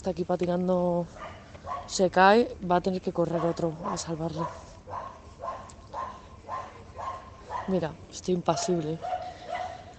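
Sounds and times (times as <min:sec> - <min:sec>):
speech: 0:00.0 - 0:05.2, 0:07.7 - 0:09.2
dog barking: 0:01.2 - 0:02.0, 0:03.3 - 0:07.8, 0:08.6 - 0:09.9.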